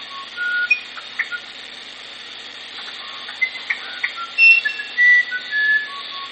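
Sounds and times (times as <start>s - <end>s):
musician wren singing flute-like whistles: 0.0s - 1.5s, 2.9s - 6.3s.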